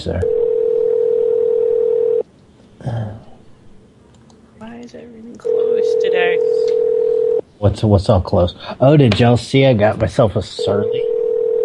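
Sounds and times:
speech: 0.0 - 0.4, 4.8 - 6.9, 7.6 - 11.0
telephone dial tone when calling a bar: 0.2 - 2.2, 5.5 - 7.4, 11.2 - 11.6.

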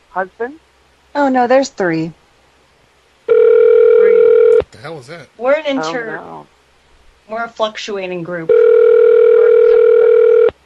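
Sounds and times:
speech: 0.2 - 2.2, 4.8 - 6.5, 7.3 - 8.8
cell phone ringing with a steady electronic tone: 3.3 - 4.6, 8.5 - 10.5.

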